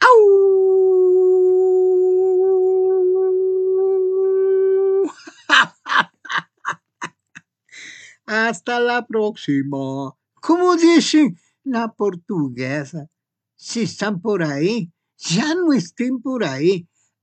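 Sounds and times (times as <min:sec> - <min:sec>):
long steady howl: 0:00.0 - 0:05.2
speech: 0:08.5 - 0:16.9.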